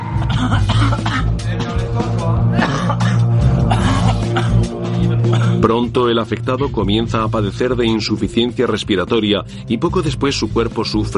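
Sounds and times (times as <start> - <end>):
dense droning low background: 0.0 - 7.8
person coughing harshly: 0.2 - 1.4, 2.5 - 5.7
throat clearing: 0.2 - 1.4, 2.5 - 5.6
speech: 0.4 - 1.2, 5.7 - 11.1.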